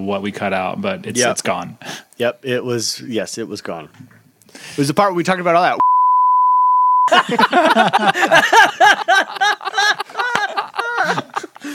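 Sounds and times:
speech: 0.0s - 5.9s, 7.1s - 9.6s
censor beep tone: 5.8s - 7.1s
people laughing: 7.1s - 11.7s.

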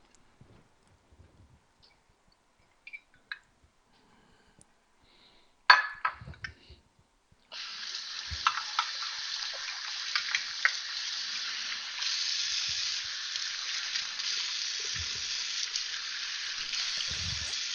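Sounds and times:
tap water running while rinsing measuring cups: 7.5s - 17.7s.

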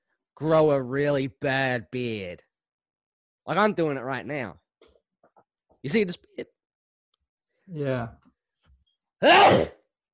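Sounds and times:
speech: 0.4s - 2.5s, 3.5s - 4.6s, 5.8s - 6.5s, 7.7s - 8.2s, 9.2s - 9.8s
forced exaggerated sneeze: 9.2s - 9.8s.

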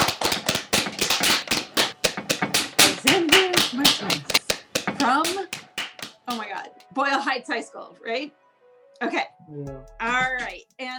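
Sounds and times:
sharp hand claps marking a recording start: 0.0s - 6.9s
speech: 6.3s - 8.4s, 9.0s - 10.9s.

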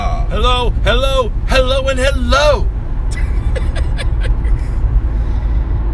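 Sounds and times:
car interior road and engine noise driving on plowed snowy roads: 0.0s - 5.9s
speech: 0.3s - 2.7s
people laughing: 3.4s - 4.5s.

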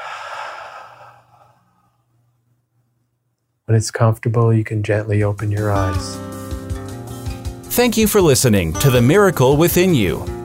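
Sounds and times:
slow deep breath in and exhale: 0.0s - 2.1s
speech: 3.7s - 6.4s, 7.8s - 10.4s.

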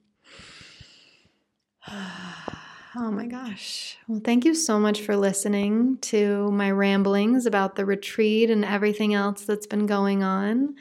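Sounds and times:
deep breaths: 0.2s - 3.0s
speech: 1.8s - 2.2s, 3.0s - 10.7s.

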